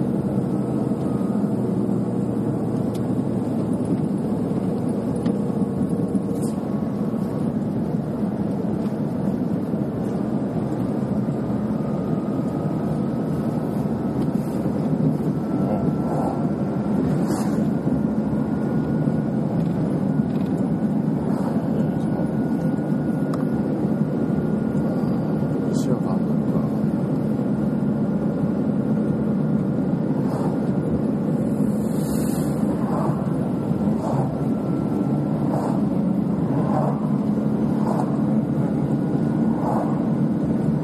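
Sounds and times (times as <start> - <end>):
faint whining tone: 0.0 - 40.8
truck engine drone driving at steady speed: 0.0 - 40.8
truck road rumble: 0.0 - 40.8.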